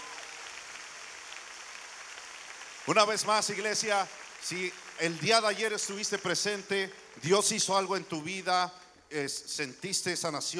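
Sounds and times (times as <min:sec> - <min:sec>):
crowd applauding: 0:00.0 - 0:07.4
speech: 0:02.9 - 0:10.5.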